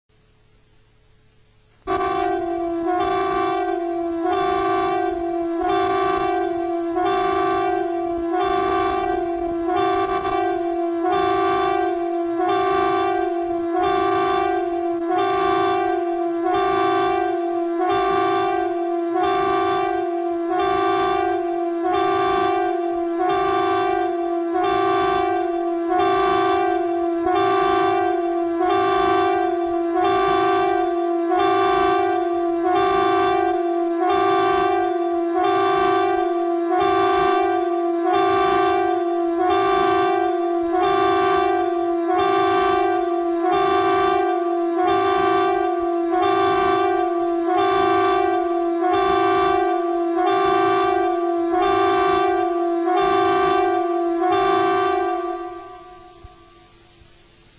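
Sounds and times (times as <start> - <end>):
civil defence air raid siren warning the population: 0.4 - 57.0.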